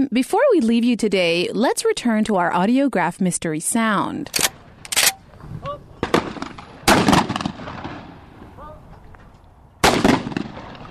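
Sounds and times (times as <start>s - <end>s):
speech: 0.0s - 4.6s
gunshots from a gun loaded with extra powder at a rod and gun club: 6.0s - 8.6s, 9.8s - 10.8s.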